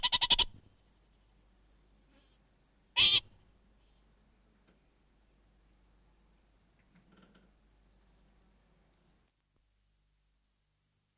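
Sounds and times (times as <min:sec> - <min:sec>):
orange-fronted parakeet harsh nasal call: 0:00.0 - 0:00.5, 0:03.0 - 0:03.3
background hiss: 0:00.0 - 0:11.1.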